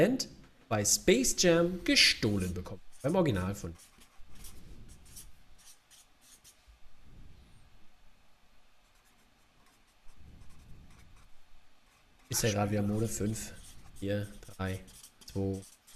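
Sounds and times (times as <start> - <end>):
speech: 0.0 - 3.9, 12.3 - 15.7
pens scratching on paper as quiz players write answers: 2.3 - 6.6, 8.9 - 15.9.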